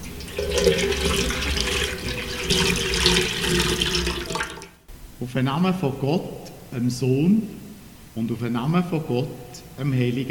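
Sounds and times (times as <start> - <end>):
water poured and splashing from an old bowl at a baptism: 0.0 - 4.7
speech: 5.2 - 7.6, 8.2 - 10.2.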